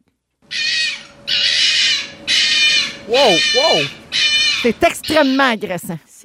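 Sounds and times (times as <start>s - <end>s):
red fox rutting call screams: 0.5s - 5.5s
speech: 3.1s - 4.0s, 4.6s - 6.2s.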